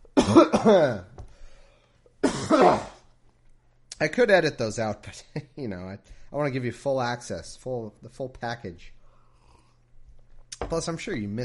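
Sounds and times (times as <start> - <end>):
person clearing throat: 0.2 - 1.1, 2.2 - 3.1
person coughing: 0.2 - 1.1, 2.2 - 3.1
speech: 0.3 - 1.1, 2.5 - 2.9, 4.0 - 9.0, 10.6 - 11.4.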